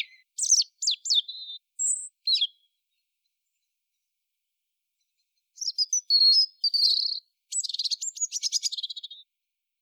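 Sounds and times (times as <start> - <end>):
European robin Erithacus rubecula singing: 0.0 - 3.1, 5.0 - 9.3.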